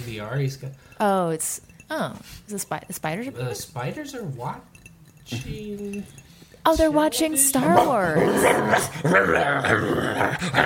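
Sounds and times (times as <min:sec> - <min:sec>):
speech: 0:00.0 - 0:10.6
dog growling and whimpering: 0:07.7 - 0:10.6.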